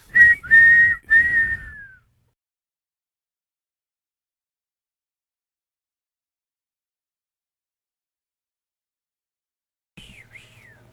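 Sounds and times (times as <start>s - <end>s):
shrill whistle blasts played as a sound-effect drop: 0.1s - 2.0s.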